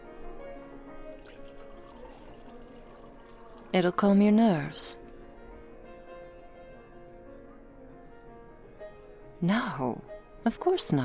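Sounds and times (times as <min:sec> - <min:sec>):
wine being poured into a glass: 0:01.1 - 0:04.2
speech: 0:03.7 - 0:05.0, 0:09.4 - 0:11.0.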